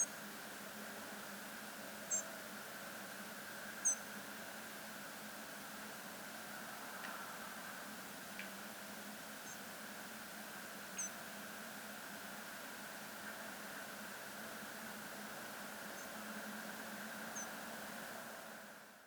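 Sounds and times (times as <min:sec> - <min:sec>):
background hum and hiss: 0:00.0 - 0:19.0
European robin giving thin high call notes: 0:02.1 - 0:02.3, 0:11.0 - 0:11.2.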